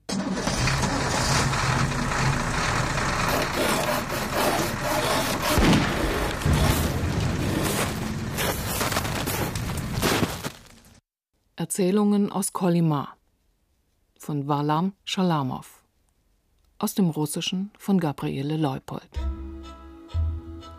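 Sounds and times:
truck engine labouring up a mountain pass: 0:00.0 - 0:10.9
speech: 0:11.8 - 0:13.2, 0:14.2 - 0:15.8, 0:16.8 - 0:19.4.

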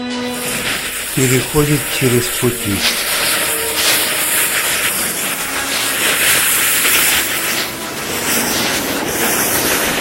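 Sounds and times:
freight train passing: 0:00.1 - 0:10.0
speech: 0:01.2 - 0:03.1.

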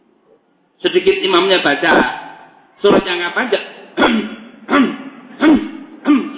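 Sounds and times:
speech: 0:00.8 - 0:02.2, 0:02.8 - 0:03.6
person coughing in a mosque during evening prayers: 0:04.0 - 0:06.3.

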